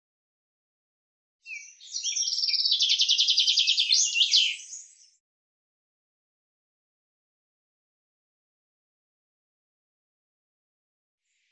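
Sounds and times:
common chaffinch singing: 1.5 - 5.2.

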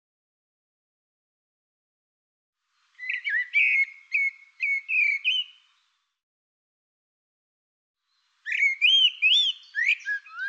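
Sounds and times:
bird whistled phrase: 3.1 - 5.6, 8.5 - 10.4.

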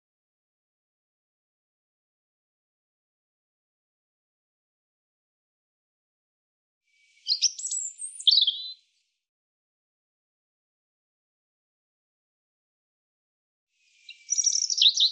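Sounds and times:
European robin singing: 7.0 - 9.0, 13.8 - 15.1.

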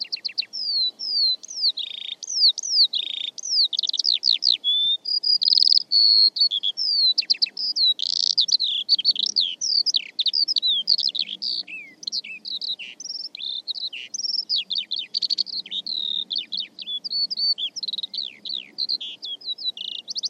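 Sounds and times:
bird song: 0.0 - 20.2.

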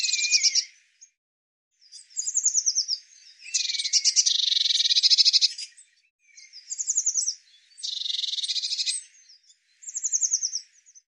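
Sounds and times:
Eurasian blue tit calling: 0.0 - 0.8, 1.9 - 9.2.

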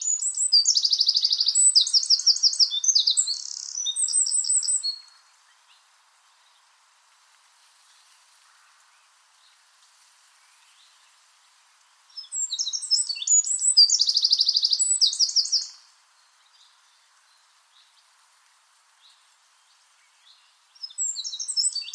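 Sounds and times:
bird song with quick high trilled notes and sharp chirps: 0.0 - 5.8, 12.2 - 15.8, 20.1 - 21.9.

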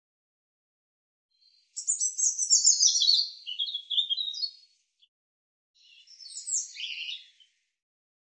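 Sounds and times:
European robin singing quiet song: 1.4 - 4.9, 5.8 - 7.6.

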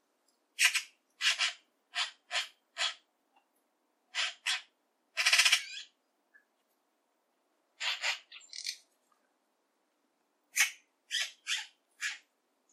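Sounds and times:
Eurasian magpie rasping and chattering calls: 0.6 - 3.0, 4.1 - 5.9, 7.8 - 8.7.

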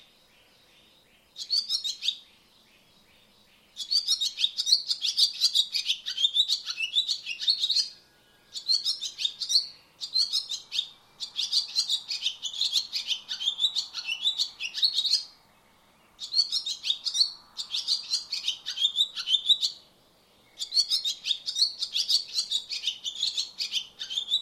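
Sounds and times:
Barn swallow twittering: 1.4 - 2.3, 3.7 - 8.0, 8.5 - 15.3, 16.2 - 19.8, 20.5 - 24.3.

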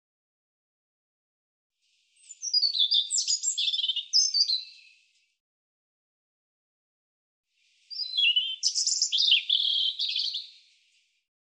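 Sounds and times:
European robin song: 2.0 - 5.2, 7.6 - 11.1.

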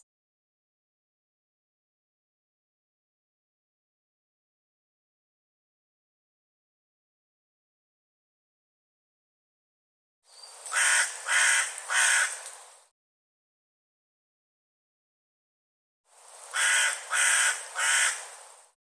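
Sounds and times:
bird giving harsh raspy cawing calls: 10.7 - 12.5, 16.5 - 18.4.

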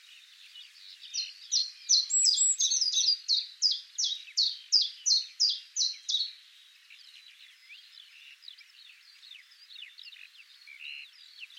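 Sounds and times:
soft hiss: 0.0 - 11.5
Eurasian blue tit calling: 1.2 - 6.4.

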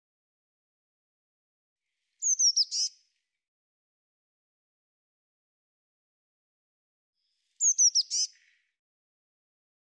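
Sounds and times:
Eurasian blue tit calling: 2.2 - 2.9, 7.6 - 8.4.

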